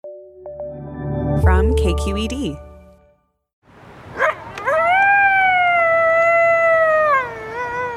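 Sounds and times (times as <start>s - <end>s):
speech: 1.4s - 2.6s
coyote yipping and howling: 4.2s - 7.9s.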